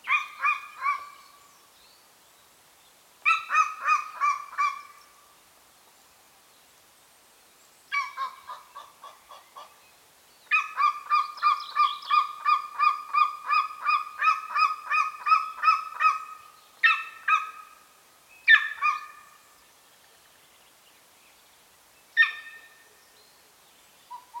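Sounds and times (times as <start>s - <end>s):
Golden Eagle yelping calls in Bucovina, Romania: 0.0s - 1.2s, 3.2s - 5.0s, 7.9s - 9.8s, 10.5s - 17.8s, 18.5s - 19.4s, 22.2s - 22.8s, 24.1s - 24.3s.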